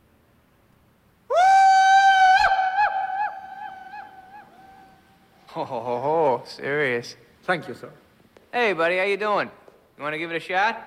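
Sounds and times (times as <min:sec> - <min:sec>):
loud sustained shout echoing in a vast hallway: 0:01.3 - 0:05.1
speech: 0:05.6 - 0:10.8.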